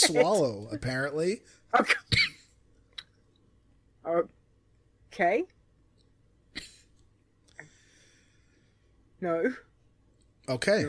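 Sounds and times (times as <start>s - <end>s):
speech: 0.0s - 2.3s, 4.0s - 4.4s, 5.1s - 5.6s, 9.2s - 9.7s, 10.5s - 10.8s
person coughing harshly: 2.0s - 2.4s.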